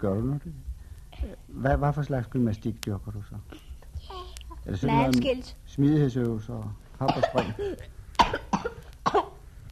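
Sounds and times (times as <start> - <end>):
speech: 0.0 - 8.0
person coughing: 7.1 - 9.4.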